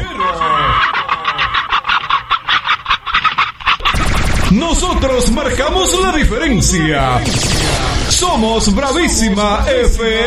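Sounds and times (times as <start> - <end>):
hens clucking and cackling: 0.0 - 4.4
speech: 4.5 - 10.2.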